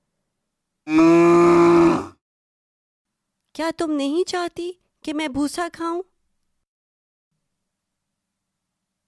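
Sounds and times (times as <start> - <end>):
angry cow mooing: 0.9 - 2.2
speech: 3.6 - 6.1.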